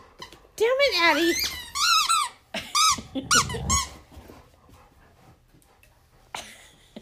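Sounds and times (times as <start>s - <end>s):
speech: 0.6s - 1.6s
squeaky dog toy squeezed in quick bursts: 0.9s - 3.9s.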